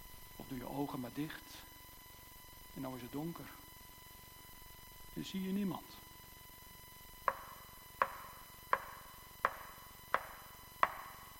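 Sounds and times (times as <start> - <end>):
speech: 0.5 - 1.7, 2.8 - 3.6, 5.2 - 6.0
walking staff tapping the ground: 7.3 - 11.3.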